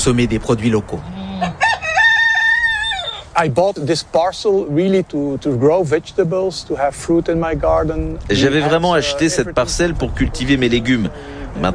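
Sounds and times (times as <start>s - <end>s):
speech: 0.0s - 1.2s, 3.4s - 11.7s
rooster crowing in a garden: 1.4s - 3.3s.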